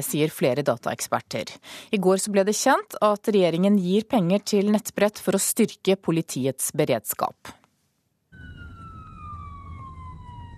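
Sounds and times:
speech: 0.0 - 7.6
heavy low rumble of traffic or engine noise: 8.3 - 10.5
police car siren wailing: 8.3 - 10.5.

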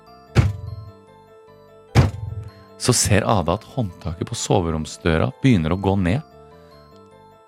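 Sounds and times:
soft footsteps thudding in a living room: 0.4 - 0.9, 2.0 - 2.6
speech: 2.8 - 6.3.

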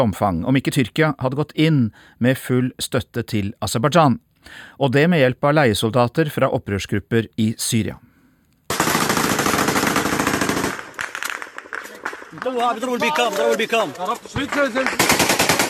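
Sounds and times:
speech: 0.0 - 8.1, 12.3 - 15.3
Kalashnikov rifle and machine gun fire from behind cars in Nagorno-Karabakh: 8.7 - 13.6, 14.5 - 15.6
men shouting: 12.4 - 14.9.

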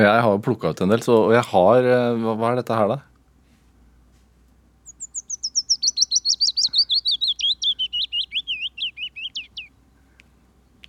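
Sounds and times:
speech: 0.0 - 3.1
willow warbler singing: 4.8 - 10.0.

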